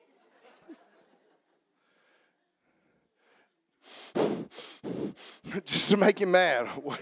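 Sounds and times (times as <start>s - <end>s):
person deliberately breathing heavily: 1.8s - 5.7s
speech: 5.5s - 7.0s.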